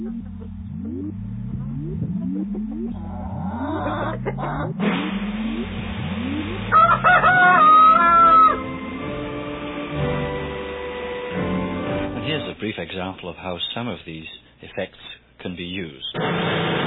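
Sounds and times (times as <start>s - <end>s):
repeated low rising whirring sounds: 0.0s - 12.6s
rooster crowing sound effect: 6.7s - 8.9s
speech: 12.7s - 16.8s.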